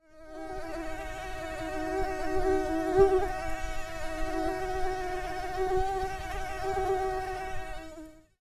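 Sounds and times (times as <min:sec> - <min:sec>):
mosquitoes buzzing: 0:00.0 - 0:08.4.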